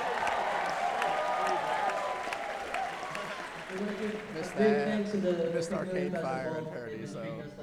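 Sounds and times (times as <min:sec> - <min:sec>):
audience shouts and cheers: 0:00.0 - 0:03.6
large concert audience applause: 0:00.0 - 0:05.0
speech: 0:04.0 - 0:07.6.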